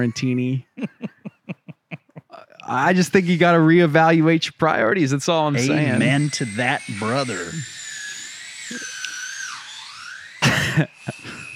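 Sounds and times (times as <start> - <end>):
speech: 0.0 - 0.9, 2.7 - 7.7, 10.8 - 11.0
laughter: 0.0 - 3.4, 5.6 - 6.3, 10.4 - 11.5
loud grinding bursts: 2.7 - 11.5
electric drill whining at a high pitch: 5.5 - 11.5.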